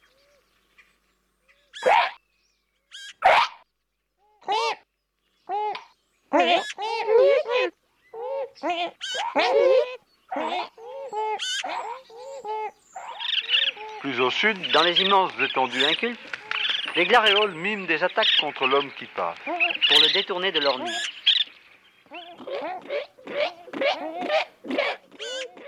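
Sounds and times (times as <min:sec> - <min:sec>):
azure-winged magpie calls: 0:01.5 - 0:02.2, 0:02.9 - 0:03.6, 0:06.4 - 0:07.1, 0:08.1 - 0:18.8, 0:19.4 - 0:21.5, 0:22.1 - 0:25.6
speech: 0:06.4 - 0:07.8, 0:08.6 - 0:10.8, 0:14.1 - 0:16.4, 0:17.0 - 0:21.2.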